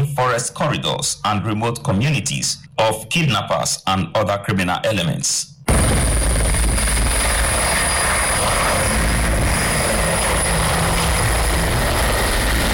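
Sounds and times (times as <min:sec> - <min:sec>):
speech: 0:00.4 - 0:06.0
helicopter flying overhead: 0:05.7 - 0:12.7.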